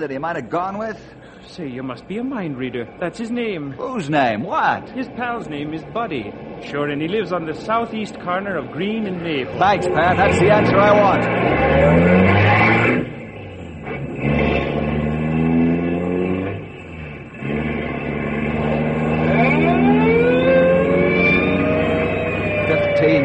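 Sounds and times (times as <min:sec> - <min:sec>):
speech: 0:00.0 - 0:12.6
car engine starting and revving: 0:05.2 - 0:23.2.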